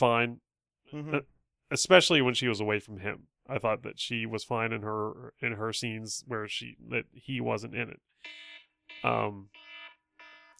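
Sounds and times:
speech: 0.0 - 9.7
timer alarm buzzing: 8.2 - 10.5.

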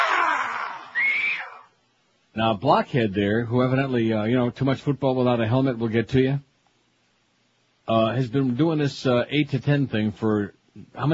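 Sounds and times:
loud piercing scream sound effect: 0.0 - 1.8
speech: 2.4 - 6.5, 7.9 - 11.1.

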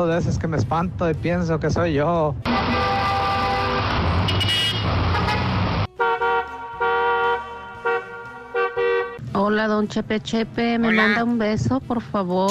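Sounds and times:
speech: 0.0 - 3.3, 9.4 - 12.5
busy street traffic roaring: 0.0 - 12.5
car horns honking: 2.5 - 9.2.

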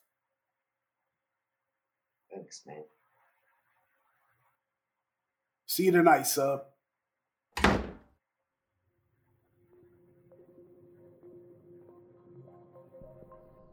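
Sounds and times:
speech: 2.5 - 3.0, 5.8 - 6.7
door closing with a thud: 7.6 - 8.1.

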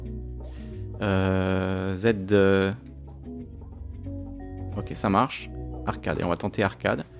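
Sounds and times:
video game background music with bright sustained synth tones: 0.0 - 7.1
speech: 1.0 - 2.9, 4.8 - 7.1.

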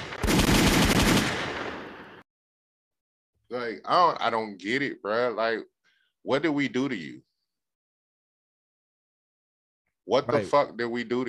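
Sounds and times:
burst of rapid gunfire: 0.0 - 2.2
speech: 3.6 - 7.3, 10.1 - 11.2.

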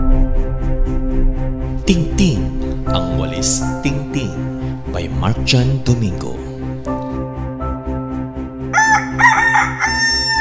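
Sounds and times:
steady low instrumental hum: 0.0 - 8.7
speech: 1.9 - 4.5, 5.2 - 6.4
rooster crowing: 8.7 - 10.3.

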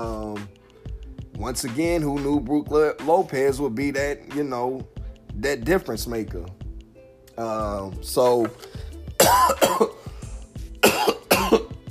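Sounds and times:
speech: 1.4 - 6.6, 7.4 - 9.9
harsh raspy coughing from one person: 9.2 - 10.1, 10.8 - 11.8.

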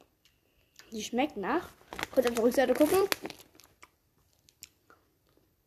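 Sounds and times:
speech: 1.0 - 3.4
chewing a marshmallow-flavoured jelly bean: 2.0 - 5.4.

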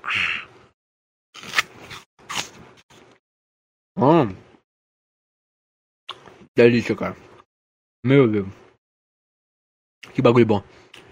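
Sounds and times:
biting into a crisp Fuji apple: 1.4 - 2.6
speech: 4.0 - 4.4, 6.6 - 7.3, 8.0 - 8.6, 10.2 - 10.8.

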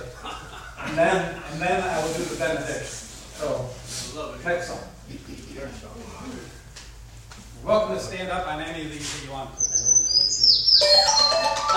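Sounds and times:
laughter: 0.0 - 1.6
speech: 0.9 - 6.6, 7.6 - 10.0, 10.8 - 11.7
bird chirping: 9.6 - 11.7.

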